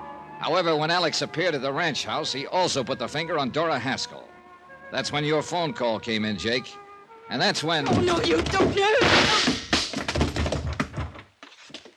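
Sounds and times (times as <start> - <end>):
speech: 0.4 - 9.6
dull thuds of blows striking a woman holding a rifle: 7.8 - 11.9
scuffling knocks: 7.8 - 11.9.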